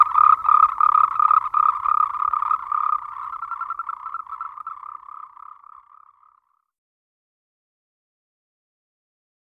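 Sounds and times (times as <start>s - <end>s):
Moltrecht's green treefrog Rhacophorus moltrechti rapid rattling croaks: 0.0s - 6.6s.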